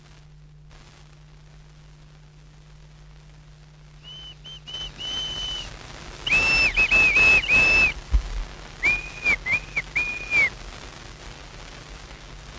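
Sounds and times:
rough noise burst: 0:00.0 - 0:12.5
clear high-pitched whistled tune: 0:04.1 - 0:05.7, 0:06.3 - 0:08.0, 0:08.8 - 0:10.5.

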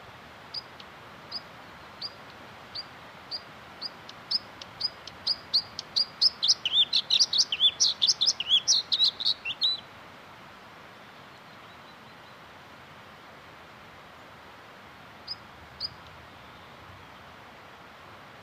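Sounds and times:
bluethroat singing: 0:04.4 - 0:09.8.

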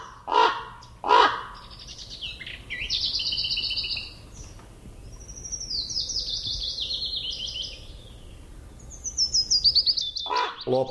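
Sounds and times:
raven croaking: 0:00.0 - 0:01.8, 0:10.2 - 0:10.8
other birds' high warbling whistled song: 0:00.0 - 0:10.8.

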